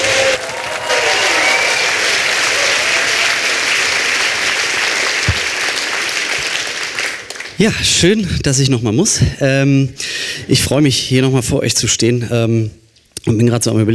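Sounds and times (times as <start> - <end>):
faint cheers: 0.0 - 3.7
large crowd applauding loudly: 0.0 - 8.0
speech: 7.6 - 13.9.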